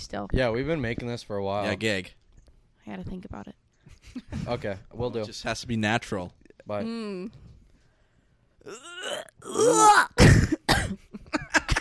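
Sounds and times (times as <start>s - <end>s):
speech: 0.0s - 2.2s, 2.9s - 7.5s, 8.6s - 11.4s
person groaning: 8.7s - 10.3s
throat-clearing: 8.7s - 11.0s
person coughing: 8.7s - 11.7s.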